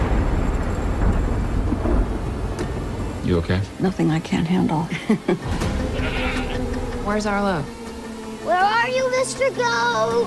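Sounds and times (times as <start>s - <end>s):
deep continuous thunder rumbling from a big storm: 0.0s - 8.0s
heavy rain hissing: 0.0s - 10.2s
speech: 3.3s - 5.8s, 7.1s - 7.8s, 8.4s - 10.2s.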